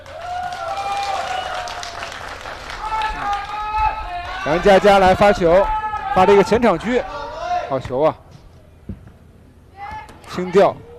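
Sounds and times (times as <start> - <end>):
audience applause for the players: 0.0 - 3.8
speech: 4.4 - 7.1, 7.7 - 8.2, 10.4 - 10.9.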